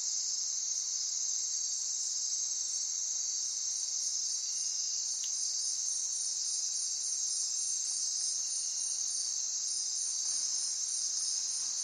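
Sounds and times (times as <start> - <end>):
dense high insect drone in a rainforest at night: 0.0 - 11.8
faint click: 5.2 - 5.4.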